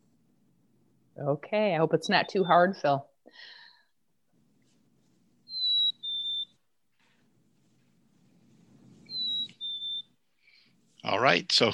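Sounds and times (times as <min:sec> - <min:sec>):
speech: 0:01.2 - 0:03.6, 0:11.1 - 0:11.7
black-capped chickadee spring song: 0:05.5 - 0:06.6, 0:09.1 - 0:10.2.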